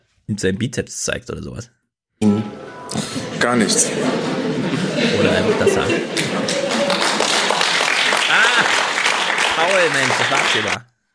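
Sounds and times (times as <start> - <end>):
speech: 0.3 - 1.8, 3.4 - 4.3, 5.0 - 6.6, 9.7 - 10.9
laughter: 2.9 - 10.8
audience clapping in a large hall: 4.8 - 10.9.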